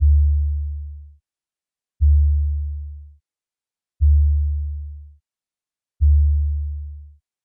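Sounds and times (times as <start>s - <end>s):
VCO synthesized sub kick drum with short attack: 0.0s - 1.0s, 2.0s - 3.0s, 4.0s - 5.0s, 6.0s - 7.1s.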